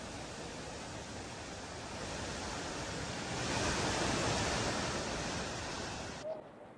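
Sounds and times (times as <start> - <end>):
rushing water of a swollen river: 0.0 - 6.3.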